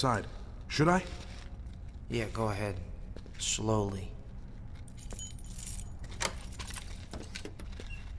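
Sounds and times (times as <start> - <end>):
speech: 0.0 - 1.3, 2.1 - 4.2
keys jangling in a door lock: 4.6 - 8.0.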